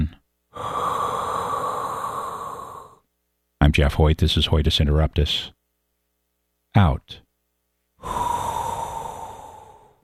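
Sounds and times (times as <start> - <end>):
slow deep breathing in and out: 0.5 - 3.1, 8.0 - 10.0
speech: 3.7 - 5.6, 6.8 - 7.2.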